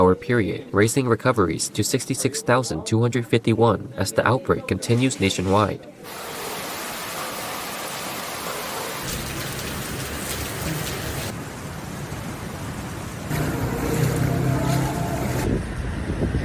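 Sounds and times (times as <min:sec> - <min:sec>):
speech: 0:00.0 - 0:06.4
heavy rain pouring: 0:06.0 - 0:16.1.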